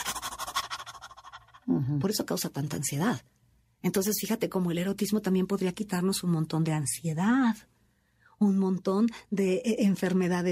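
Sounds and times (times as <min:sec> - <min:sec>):
person imitating panting with short breathy huffs: 0:00.0 - 0:01.8
speech: 0:01.7 - 0:07.8, 0:08.4 - 0:10.5.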